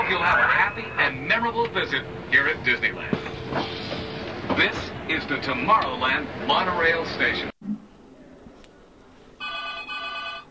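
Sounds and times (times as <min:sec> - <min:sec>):
speech: 0:00.1 - 0:07.5
faint murmur: 0:07.9 - 0:10.5
telephone bell ringing: 0:09.4 - 0:10.5.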